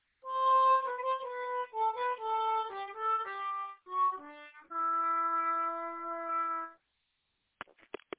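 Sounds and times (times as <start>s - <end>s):
weird dark melody tail: 0.3s - 6.7s.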